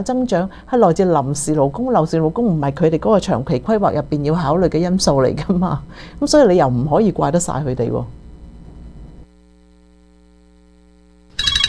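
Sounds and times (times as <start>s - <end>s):
speech: 0.0s - 8.2s
low electrical hum: 0.0s - 11.6s
bright electronic ringtone of an incoming video call: 11.4s - 11.6s.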